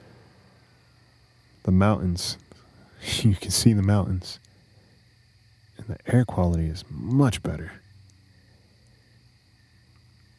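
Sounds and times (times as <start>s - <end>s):
crickets chirping at night: 0.0s - 10.3s
low rumble: 0.0s - 10.3s
speech: 1.7s - 2.4s, 3.0s - 4.5s, 5.8s - 7.8s.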